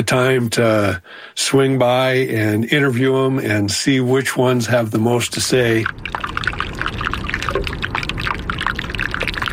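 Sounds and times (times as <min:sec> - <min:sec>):
speech: 0:00.0 - 0:06.6
iceberg ice popping and fizzing as trapped air bubbles escape: 0:05.6 - 0:09.5.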